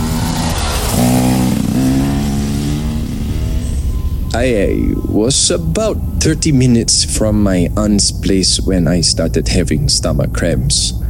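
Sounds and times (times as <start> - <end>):
motorcycle engine revving then idling: 0.0 - 11.0
speech: 4.4 - 11.0.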